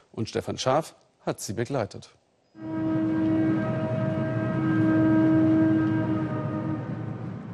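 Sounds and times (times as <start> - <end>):
speech: 0.2 - 2.9
long freight train loaded with iron ore rumbling through the desert: 2.6 - 7.5.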